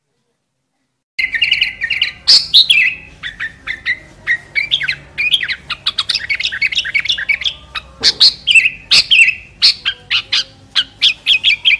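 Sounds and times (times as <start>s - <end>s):
sooty-headed bulbul song: 1.2s - 11.7s.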